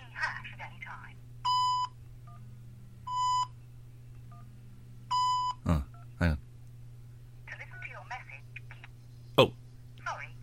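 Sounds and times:
short electronic voicemail beep tones: 0:01.5 - 0:02.4, 0:03.1 - 0:03.5, 0:05.1 - 0:06.1.

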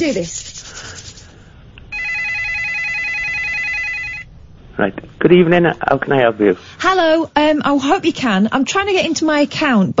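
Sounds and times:
speech: 0:00.0 - 0:00.6, 0:04.8 - 0:09.9
low noise: 0:00.0 - 0:09.9
telephone ringing with electronic trill: 0:01.9 - 0:04.3.

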